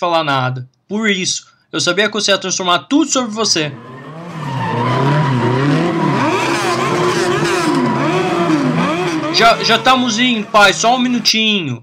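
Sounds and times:
speech: 0.0s - 4.0s, 9.4s - 11.8s
person imitating race car engine revving and tires squealing: 3.6s - 11.3s.

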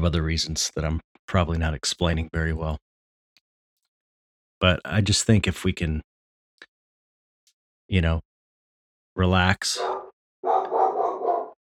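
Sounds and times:
speech: 0.0s - 2.8s, 4.6s - 6.1s, 7.9s - 8.3s, 9.2s - 10.0s
dogs barking: 9.8s - 11.6s.

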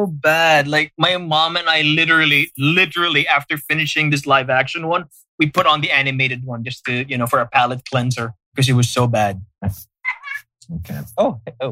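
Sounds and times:
speech: 0.0s - 9.9s, 10.7s - 11.6s
pet cat meowing: 10.1s - 10.4s.

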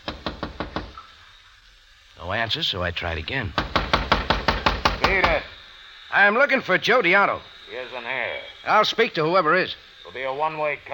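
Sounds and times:
firm knocks on a wooden door: 0.0s - 1.0s, 3.6s - 5.4s
speech: 2.3s - 3.7s, 5.1s - 10.9s.

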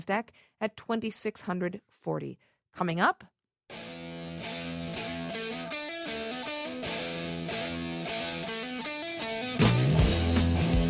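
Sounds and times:
speech: 0.0s - 4.0s
heavy metal music with distorted guitar and pounding drums: 3.7s - 10.8s.

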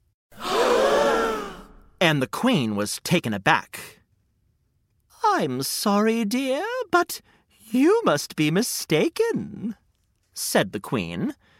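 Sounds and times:
crowd of people gasping: 0.3s - 2.0s
speech: 2.1s - 4.0s, 5.3s - 9.8s, 10.4s - 11.5s.

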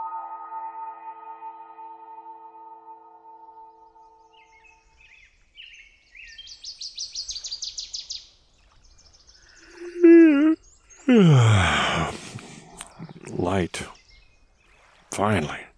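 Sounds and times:
birds singing in the morning: 3.2s - 15.7s
person groaning or sighing: 9.7s - 12.8s
speech: 13.5s - 14.0s, 15.2s - 15.7s.

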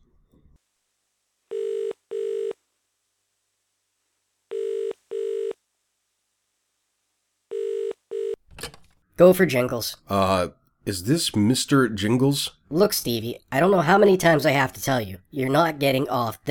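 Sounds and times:
telephone ringback tone heard through the line: 1.5s - 2.6s, 4.5s - 5.6s, 7.5s - 8.4s
speech: 9.2s - 16.4s.

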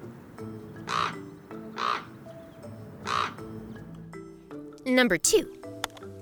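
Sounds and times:
common raven croaking: 0.9s - 1.2s, 1.8s - 2.1s, 3.0s - 3.4s
speech: 4.9s - 5.6s.

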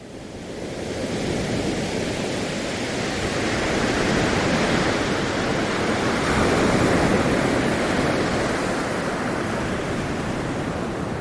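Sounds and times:
ocean waves recorded through a microphone: 0.0s - 11.1s.

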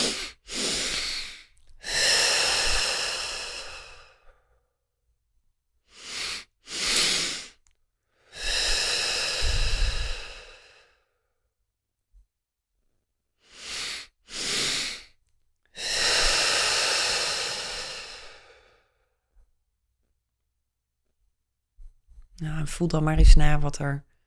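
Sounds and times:
long airy exhale out through the mouth in a breathing exercise: 0.0s - 4.4s, 5.9s - 7.6s, 8.3s - 11.0s, 13.4s - 15.1s, 15.8s - 18.8s
quick breaths in through the nose in a breathing exercise: 0.0s - 4.6s, 5.9s - 11.2s, 13.4s - 19.1s
speech: 22.4s - 24.1s.

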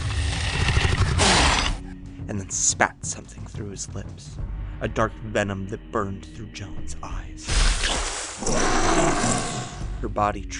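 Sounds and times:
huntsman creature growling and hissing: 0.1s - 1.8s, 7.8s - 9.9s
speech: 2.3s - 10.5s.

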